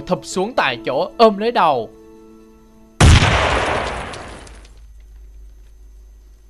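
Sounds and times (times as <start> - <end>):
speech: 0.1 - 2.0
hand grenade exploding in mid-air: 3.0 - 4.7.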